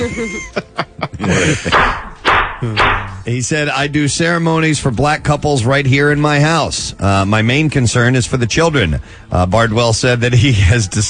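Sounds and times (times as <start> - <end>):
laughter: 0.0 - 2.0
speech: 0.1 - 2.0, 2.6 - 11.0
gavel banging: 1.7 - 3.3.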